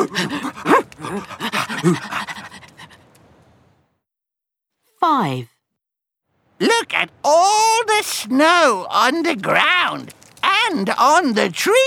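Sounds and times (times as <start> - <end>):
sled dogs of a dog-sled team panting in the snow: 0.0 - 3.0
speech: 1.8 - 2.2, 5.0 - 5.5, 6.6 - 11.8.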